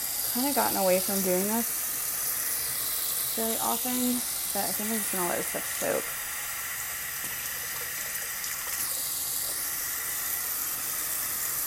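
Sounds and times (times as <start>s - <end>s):
running tap water at a sink rinsing out recycling: 0.0s - 11.6s
speech: 0.4s - 1.8s, 3.4s - 6.2s.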